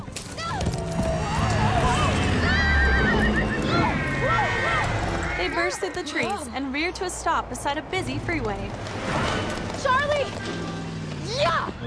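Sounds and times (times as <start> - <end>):
horse neighing and whinnying: 1.0 - 6.5
speech: 5.7 - 11.8.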